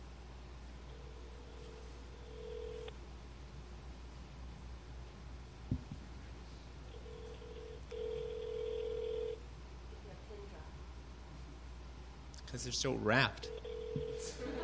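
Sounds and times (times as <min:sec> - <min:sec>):
low hum: 0:00.0 - 0:14.6
telephone ringing over speakerphone: 0:00.9 - 0:02.9, 0:06.9 - 0:09.4, 0:13.4 - 0:14.4
speech: 0:12.5 - 0:14.6.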